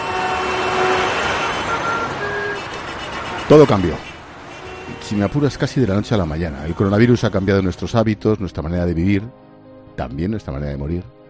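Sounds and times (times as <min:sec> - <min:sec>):
street traffic roar: 0:00.0 - 0:08.2
speech: 0:03.5 - 0:04.1, 0:05.0 - 0:09.4, 0:10.0 - 0:11.2.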